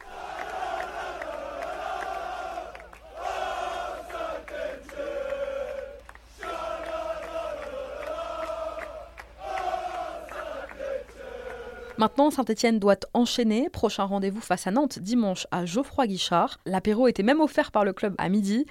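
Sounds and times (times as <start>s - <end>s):
large crowd of football supporters chanting in unison at night: 0.0s - 12.2s
speech: 12.0s - 18.6s.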